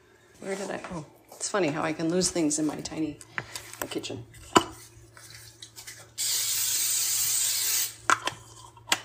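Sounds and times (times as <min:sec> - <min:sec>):
speech: 0:00.4 - 0:04.4
cooking spray hissing onto the bottom of a 9x13 baking pan: 0:06.1 - 0:08.0.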